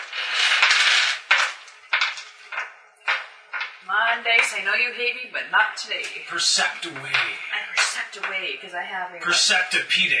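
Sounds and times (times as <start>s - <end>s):
dice tumbling across a hard table: 0.0s - 3.8s
speech: 3.9s - 10.1s.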